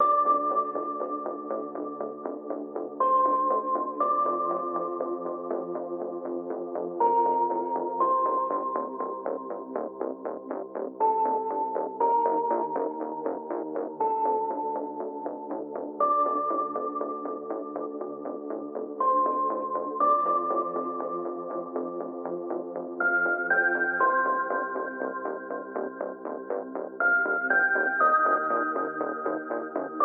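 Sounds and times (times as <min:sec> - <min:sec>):
music: 0:00.0 - 0:30.0.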